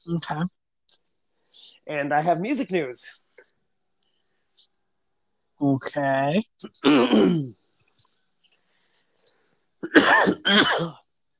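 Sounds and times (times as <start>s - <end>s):
speech: 0.0s - 0.6s, 1.6s - 3.2s, 5.6s - 7.6s, 9.8s - 11.0s
person coughing harshly: 6.8s - 7.6s, 9.8s - 11.0s.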